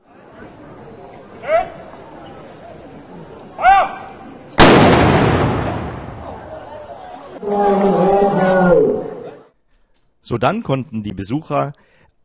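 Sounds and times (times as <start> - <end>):
murmur of a chattering crowd: 0.0 - 9.6
ceremonial cannon boom: 4.6 - 6.7
speech: 10.3 - 12.2.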